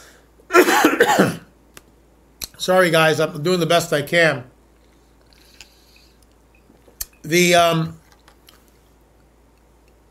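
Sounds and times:
rough raspy cough: 0.5 - 1.5
speech: 1.1 - 1.4, 2.6 - 4.5, 7.2 - 8.0.

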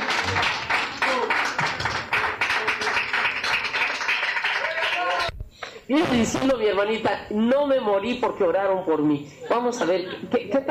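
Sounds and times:
audience applauding: 0.0 - 5.3
speech: 5.9 - 10.6.

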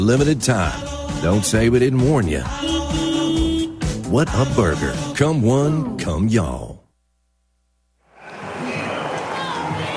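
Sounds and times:
speech: 0.0 - 3.0, 4.1 - 6.7
large baseball stadium crowd buzzing and murmuring: 8.1 - 9.9.

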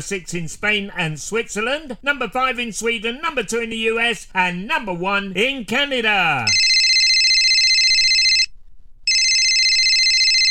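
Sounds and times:
speech: 0.0 - 6.6
telephone ringing: 6.5 - 8.5, 9.1 - 10.4.

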